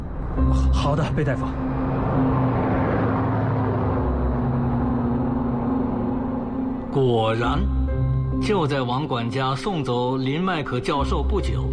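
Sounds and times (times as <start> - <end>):
speech: 0.5 - 2.4, 6.9 - 7.8, 8.4 - 11.7
car engine running steadily on a road: 1.2 - 7.0.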